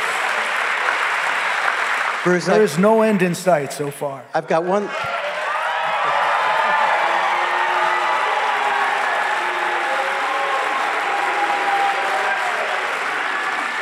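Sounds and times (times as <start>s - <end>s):
large crowd clapping: 0.0s - 3.4s, 4.8s - 13.8s
speech: 2.2s - 5.1s
large crowd cheering and whooping: 4.9s - 13.8s.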